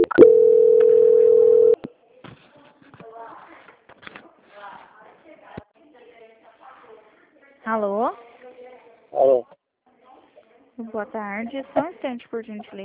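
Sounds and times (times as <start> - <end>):
telephone line steady tone while a call is transferred: 0.0 - 1.8
speech: 11.0 - 12.8.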